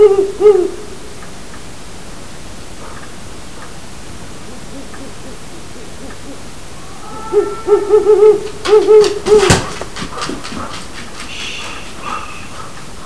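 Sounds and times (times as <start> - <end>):
owl hooting: 0.0 - 1.2, 2.8 - 9.7, 11.3 - 13.0.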